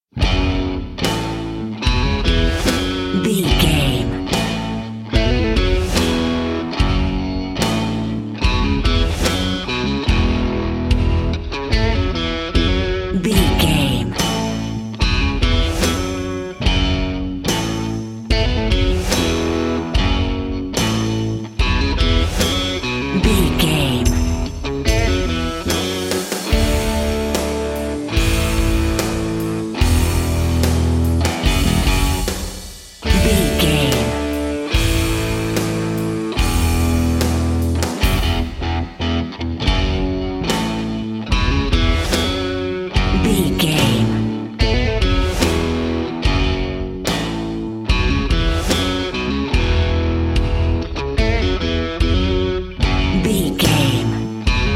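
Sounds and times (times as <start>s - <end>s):
rock music: 0.0s - 54.7s.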